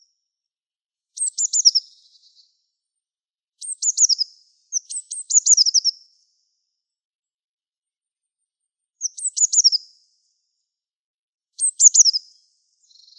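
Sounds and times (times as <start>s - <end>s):
Eurasian blue tit calls: 1.2s - 2.5s, 3.6s - 6.0s, 9.0s - 9.8s, 11.6s - 13.1s.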